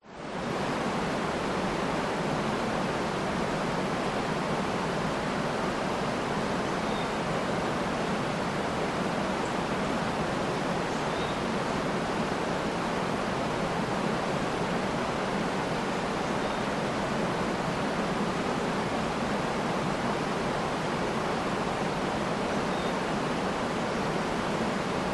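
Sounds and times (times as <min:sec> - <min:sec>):
creek waterfall at 40m distance: 0:00.0 - 0:25.1
forest birds: 0:06.4 - 0:08.2, 0:10.8 - 0:11.9, 0:15.9 - 0:17.1, 0:21.7 - 0:25.1.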